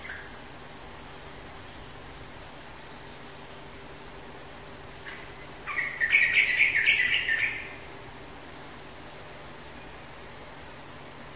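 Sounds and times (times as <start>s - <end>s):
bird warbling with quick rippling chirps: 0.0s - 0.4s, 5.0s - 7.9s.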